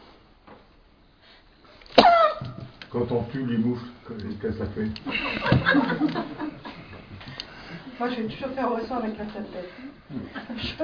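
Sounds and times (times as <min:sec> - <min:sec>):
sneeze: 0:01.9 - 0:02.4
speech: 0:02.9 - 0:06.7, 0:08.0 - 0:10.8
laughter: 0:04.4 - 0:07.4, 0:10.1 - 0:10.8.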